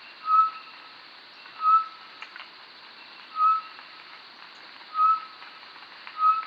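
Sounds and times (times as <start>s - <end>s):
faint hiss: 0.0s - 6.4s
short-tailed batis Batis mixta whistling steady note: 0.2s - 0.7s, 1.5s - 2.0s, 3.3s - 3.7s, 4.9s - 5.4s, 6.2s - 6.4s.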